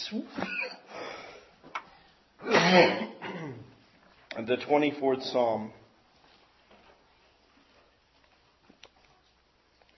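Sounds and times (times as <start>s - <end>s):
speech: 0.1s - 0.7s, 2.7s - 3.1s, 4.4s - 5.8s
man clearing his throat: 2.4s - 3.7s
man coughing harshly: 2.4s - 3.7s.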